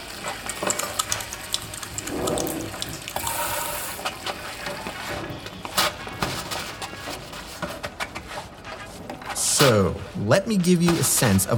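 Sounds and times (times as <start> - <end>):
tap water running while washing hands: 0.0 - 5.0
speech: 9.6 - 11.5.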